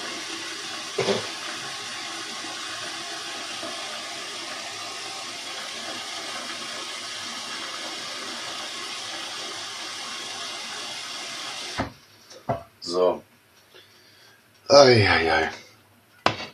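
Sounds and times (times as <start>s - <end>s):
tap water running: 0.0s - 12.0s
speech: 13.0s - 13.3s, 14.8s - 15.6s.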